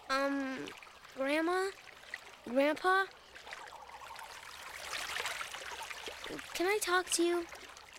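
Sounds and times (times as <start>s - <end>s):
river water rushing and gurgling: 0.0s - 7.9s
speech: 0.1s - 1.8s, 2.4s - 3.2s, 6.3s - 7.6s.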